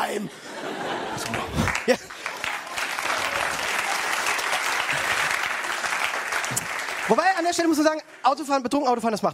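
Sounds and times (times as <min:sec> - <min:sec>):
laughter: 0:00.1 - 0:05.5
speech: 0:00.2 - 0:00.6, 0:01.2 - 0:02.2, 0:07.1 - 0:09.3
crowd applauding: 0:00.7 - 0:08.6.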